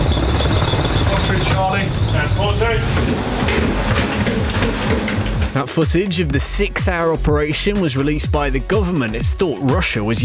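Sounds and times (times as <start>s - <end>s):
military helicopter rotor roar: 0.0s - 5.5s
voices: 1.0s - 7.2s
speech: 1.8s - 10.2s.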